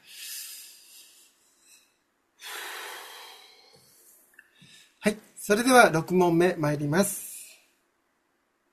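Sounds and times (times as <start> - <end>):
deep breath taken by a quiz host: 0.0 - 5.0
speech: 5.0 - 7.3.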